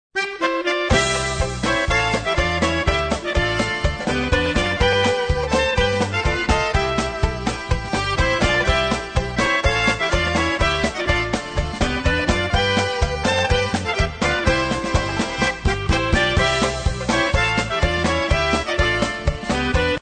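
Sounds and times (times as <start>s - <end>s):
flutophone playing a polka: 0.1s - 20.0s.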